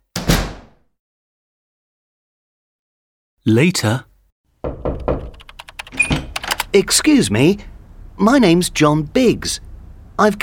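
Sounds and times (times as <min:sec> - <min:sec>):
door swinging shut with a solid thump: 0:00.1 - 0:00.8, 0:04.6 - 0:06.5
speech: 0:03.4 - 0:04.1, 0:06.8 - 0:10.4.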